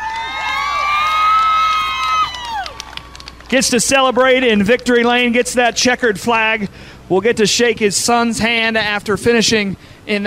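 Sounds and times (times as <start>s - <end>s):
large crowd cheering for car race winner: 0.0s - 5.3s
speech: 3.5s - 10.2s.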